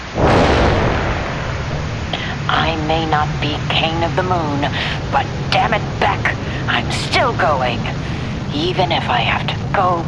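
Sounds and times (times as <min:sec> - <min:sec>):
rocket blast-off roar: 0:00.0 - 0:05.6
speech: 0:02.9 - 0:10.0.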